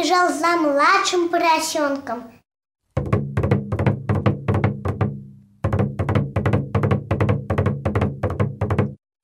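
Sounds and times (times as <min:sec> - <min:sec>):
speech: 0:00.1 - 0:02.4
heavy knocking on a wooden door: 0:03.0 - 0:09.0.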